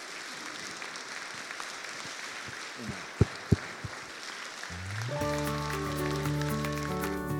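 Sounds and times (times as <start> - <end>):
room full of people clapping: 0.0 - 7.3
music: 5.0 - 7.3.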